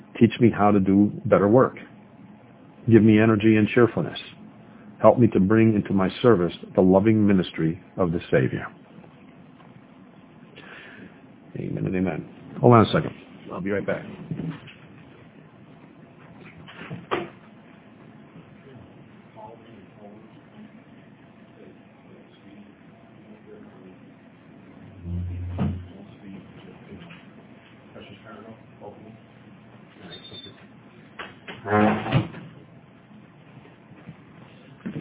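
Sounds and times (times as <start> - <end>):
speech: 0.2 - 1.9, 2.8 - 4.3, 5.0 - 8.8, 11.6 - 14.6
faint movement: 24.8 - 26.0
heavy sliding door creaking and scraping: 24.9 - 26.0, 31.6 - 32.3
sharp knock: 25.1 - 25.9
heavy door shutting with a loud thud: 25.1 - 26.0, 31.6 - 32.5.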